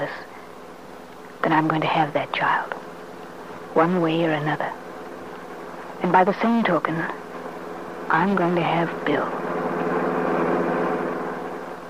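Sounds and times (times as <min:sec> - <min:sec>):
speech: 0:01.5 - 0:02.9, 0:03.8 - 0:04.8, 0:06.0 - 0:07.2, 0:08.1 - 0:09.5
car engine running while the car is driven: 0:03.5 - 0:11.8.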